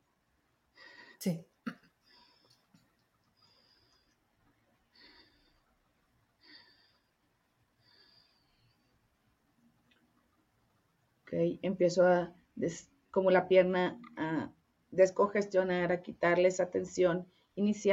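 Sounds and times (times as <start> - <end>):
speech: 1.2 - 1.5, 11.4 - 17.9
person's rapid shallow breathing driven from the stomach: 2.0 - 9.4.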